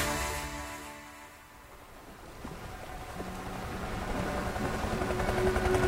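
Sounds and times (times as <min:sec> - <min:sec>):
helicopter hovering overhead: 0:02.7 - 0:05.8.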